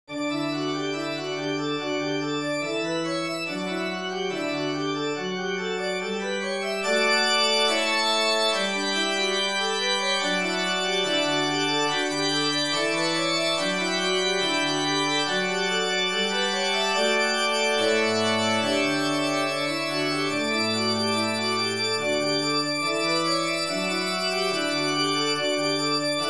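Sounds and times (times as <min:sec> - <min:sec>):
organ: 0:00.1 - 0:26.2.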